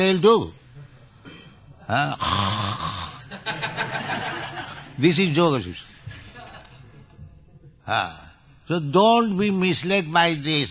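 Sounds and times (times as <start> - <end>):
speech: 0.0 - 0.6, 1.9 - 2.8, 3.4 - 5.9, 7.9 - 10.6
person imitating loud snoring with their voice: 1.9 - 3.2
laughter: 3.3 - 5.0, 6.1 - 7.2.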